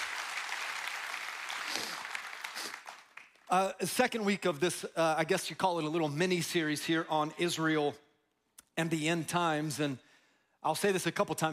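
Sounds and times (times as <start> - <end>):
audience clapping: 0.0 - 3.9
speech: 3.5 - 8.0, 8.8 - 11.5.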